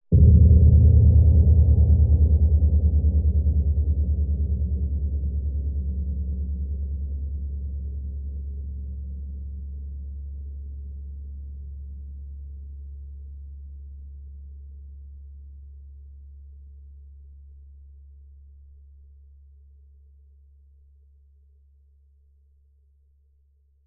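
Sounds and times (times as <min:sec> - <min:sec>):
deep dark metallic low-pitched atmospheric impact hit: 0:00.1 - 0:06.8.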